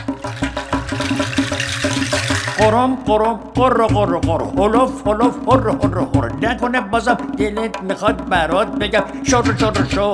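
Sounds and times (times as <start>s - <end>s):
water tap rattling with rhythmic knocking: 0.0s - 2.7s
speech: 2.6s - 10.1s.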